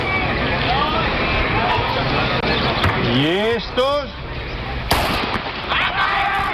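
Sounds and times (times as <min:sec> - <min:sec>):
crowd murmur at a race: 0:00.0 - 0:06.5
speech: 0:03.2 - 0:04.2
starting pistol shot at a race: 0:04.9 - 0:05.5.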